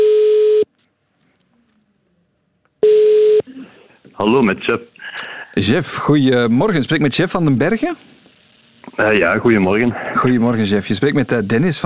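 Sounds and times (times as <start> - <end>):
ringback tone on a telephone line while placing a call: 0.0 - 0.7, 2.8 - 3.4
speech: 4.2 - 5.0, 5.6 - 8.1, 9.0 - 11.8.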